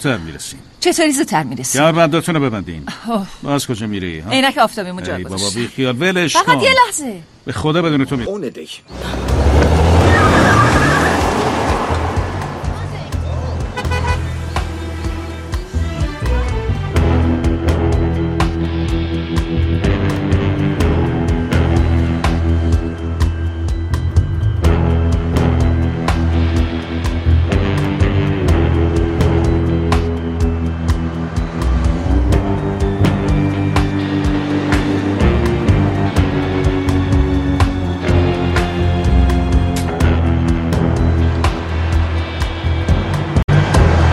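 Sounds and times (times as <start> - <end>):
speech: 0.0 - 9.4
car engine drone while driving: 8.9 - 44.1.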